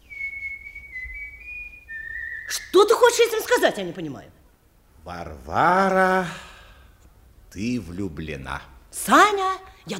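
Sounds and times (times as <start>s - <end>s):
person whistling a tune: 0.0s - 2.5s
speech: 2.5s - 4.4s, 5.0s - 6.5s, 7.5s - 9.9s.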